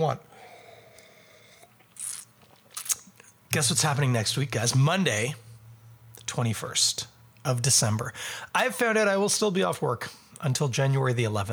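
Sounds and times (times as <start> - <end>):
speech: 0.0 - 0.3, 3.5 - 5.4, 6.3 - 11.5
sipping beer: 0.3 - 3.4.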